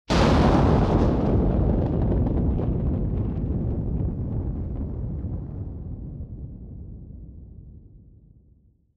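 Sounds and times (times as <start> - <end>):
synthetic thunder: 0.1 - 8.1.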